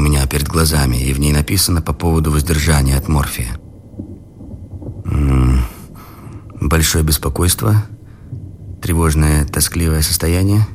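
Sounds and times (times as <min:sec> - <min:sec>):
thunder from an approaching thunderstorm: 0:00.0 - 0:10.7
speech: 0:00.5 - 0:03.6, 0:06.6 - 0:08.0, 0:08.8 - 0:10.7.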